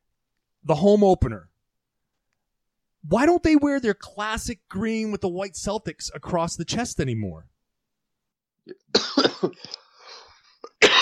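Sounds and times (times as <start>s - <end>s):
speech: 0.6s - 1.5s, 3.0s - 7.5s, 8.7s - 9.8s
harsh coughing fit: 8.7s - 11.0s.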